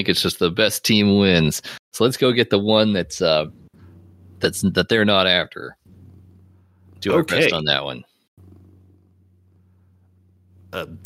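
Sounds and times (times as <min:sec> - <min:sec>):
speech: 0:00.0 - 0:03.6, 0:04.4 - 0:05.8, 0:07.0 - 0:08.1, 0:10.7 - 0:11.0
cat purring: 0:02.8 - 0:11.0.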